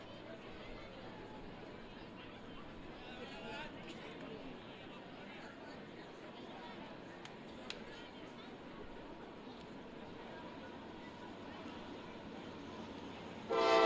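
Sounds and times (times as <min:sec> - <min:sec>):
crowd and stadium noise: 0:00.0 - 0:13.8
loud tonal train horn blast: 0:13.5 - 0:13.8.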